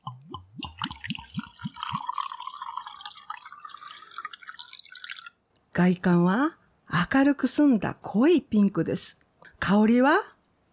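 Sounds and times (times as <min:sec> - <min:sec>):
rosé wine poured from a bottle into a glass: 0:00.1 - 0:05.5
speech: 0:05.8 - 0:10.3.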